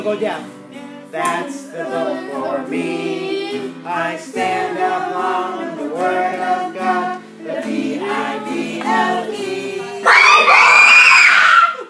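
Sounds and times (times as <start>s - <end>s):
speech: 0.0s - 9.6s
children singing together: 1.2s - 11.3s
children screaming loudly: 10.0s - 11.8s.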